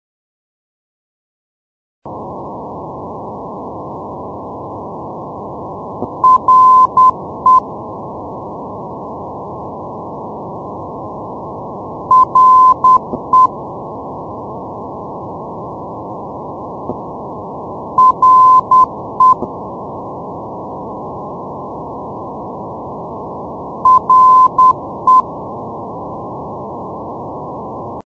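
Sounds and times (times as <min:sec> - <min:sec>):
non-directional radio beacon signal at Reykjanesskoli: 0:06.0 - 0:07.6, 0:12.1 - 0:13.5, 0:18.0 - 0:19.5, 0:23.8 - 0:25.3.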